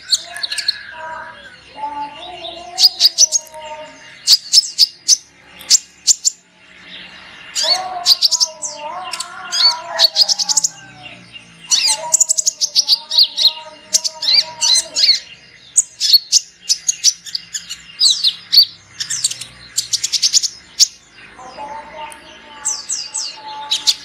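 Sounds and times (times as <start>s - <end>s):
sunbird chirps and trills: 0.0s - 24.0s.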